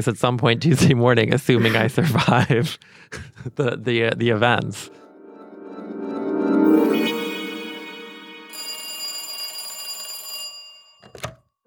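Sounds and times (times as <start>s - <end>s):
speech: 0.0s - 5.0s
telephone ringing with electronic tones: 6.8s - 11.5s.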